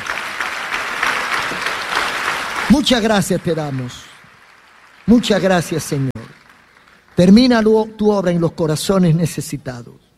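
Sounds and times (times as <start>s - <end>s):
church congregation applauding: 0.0s - 8.1s
speech: 2.8s - 4.1s, 5.1s - 6.1s, 7.2s - 10.1s.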